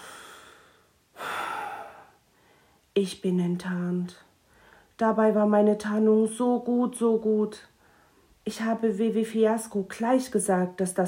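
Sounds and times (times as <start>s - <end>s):
person sniffling: 0.0s - 2.1s
speech: 3.0s - 4.3s, 5.0s - 7.7s, 8.4s - 11.0s.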